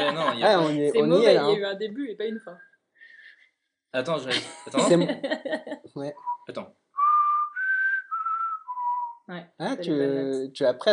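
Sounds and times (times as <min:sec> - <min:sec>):
laughter: 0:00.0 - 0:01.2, 0:04.3 - 0:05.9
speech: 0:00.0 - 0:02.7, 0:03.9 - 0:06.8, 0:09.3 - 0:10.9
person whistling a film tune: 0:06.2 - 0:09.3.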